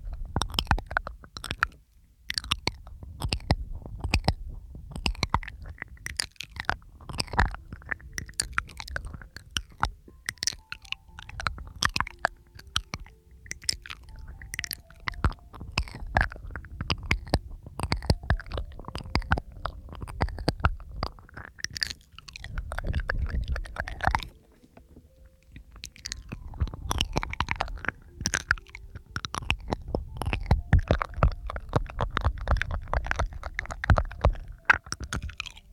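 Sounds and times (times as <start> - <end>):
wet mouth clicks, smacks and chewing-like snaps: 0.0 - 35.7.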